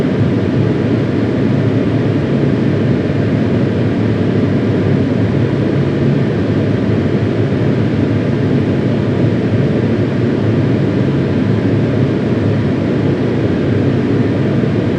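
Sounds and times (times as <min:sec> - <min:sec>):
CFM56B engine noise in A320 cockpit: 0:00.0 - 0:14.9.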